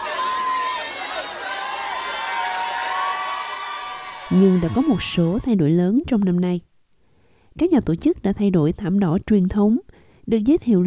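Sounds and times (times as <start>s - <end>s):
fans cheering and shouting excitedly at red carpet: 0.0s - 5.6s
speech: 4.3s - 6.7s, 7.6s - 10.8s.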